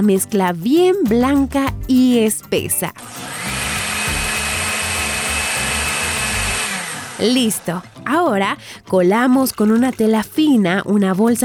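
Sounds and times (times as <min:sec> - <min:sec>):
speech: 0:00.0 - 0:03.4, 0:07.2 - 0:11.4
blender blending grated coconut with hot water: 0:03.0 - 0:08.0.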